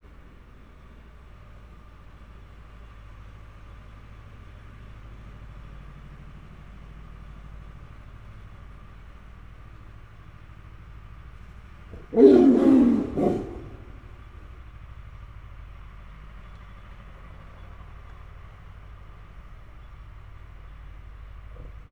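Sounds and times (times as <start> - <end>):
tractor: 0.0 - 11.9, 14.3 - 21.8
Bengal tiger roaring in an enclosure: 11.9 - 14.2.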